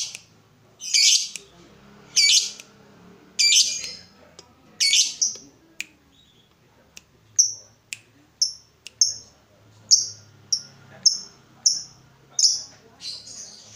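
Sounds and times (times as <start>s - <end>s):
yellow-vented bulbul chattering: 0.0s - 1.5s, 2.1s - 2.8s, 3.4s - 4.1s, 4.8s - 6.5s, 7.3s - 13.7s
faint low background hum: 0.0s - 13.7s.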